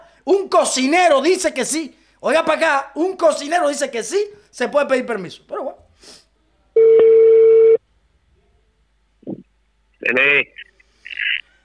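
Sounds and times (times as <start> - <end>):
speech: 0.2 - 6.2, 10.1 - 10.6
telephone ringback tone over a telephone line: 6.8 - 7.8.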